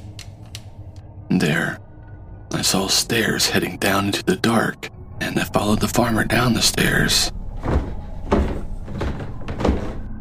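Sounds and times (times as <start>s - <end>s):
rough low rumbling background: 0.0s - 10.1s
speech: 1.4s - 1.9s, 2.6s - 7.4s
heavy oak door with iron bolt unbolted and pulled open: 7.4s - 10.1s.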